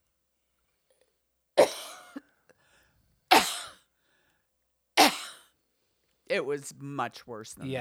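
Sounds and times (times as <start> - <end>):
person coughing harshly: 1.6 - 2.3, 3.3 - 3.8, 5.0 - 5.4
speech: 6.3 - 7.7.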